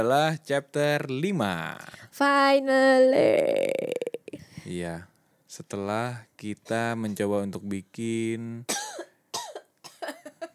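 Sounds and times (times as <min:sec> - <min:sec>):
speech: 0:00.0 - 0:04.0, 0:04.7 - 0:08.8
person coughing: 0:08.7 - 0:10.3.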